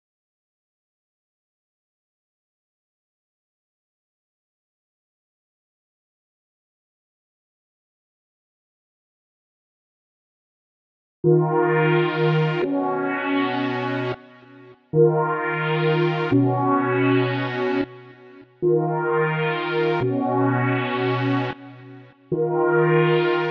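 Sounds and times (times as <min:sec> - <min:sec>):
D# minor pad melody loop: 0:11.3 - 0:14.2, 0:15.0 - 0:17.9, 0:18.6 - 0:23.4.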